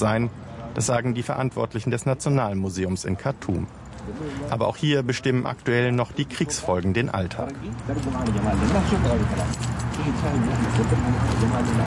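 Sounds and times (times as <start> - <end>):
speech: 0.0 - 11.8
bunch of keys jingling at a man's waistband while walking: 7.4 - 11.0.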